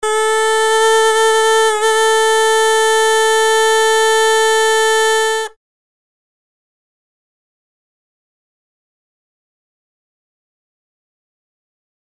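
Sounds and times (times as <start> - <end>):
ancient horn musical instrument playing: 0.0 - 5.6.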